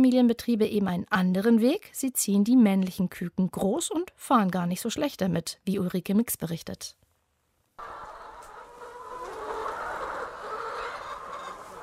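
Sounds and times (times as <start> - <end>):
speech: 0.0 - 7.0
white laying hens clucking and cackling on a free-range farm: 7.8 - 11.8.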